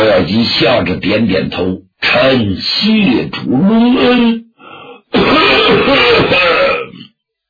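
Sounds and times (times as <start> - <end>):
speech: 0.0 - 4.4
storyteller imitating a coughing fit: 5.2 - 7.0.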